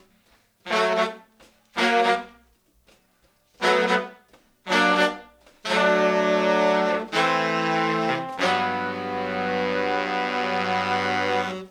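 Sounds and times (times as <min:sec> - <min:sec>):
soul horns playing 70s analog funk: 0:03.6 - 0:11.6.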